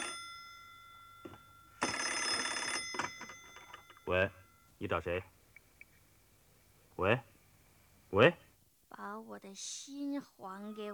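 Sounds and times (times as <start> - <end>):
telephone bell ringing: 0.0 - 4.8
speech: 4.1 - 5.4, 7.0 - 7.3, 8.1 - 10.9.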